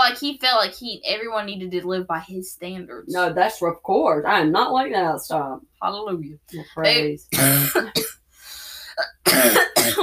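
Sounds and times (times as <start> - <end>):
speech: 0.1 - 8.0
person coughing: 7.3 - 8.2, 9.0 - 10.0
breathy exhale: 8.3 - 9.0.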